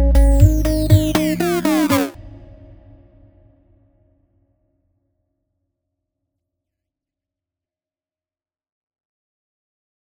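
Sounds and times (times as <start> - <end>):
classic modulation effect: 0.2 - 2.2.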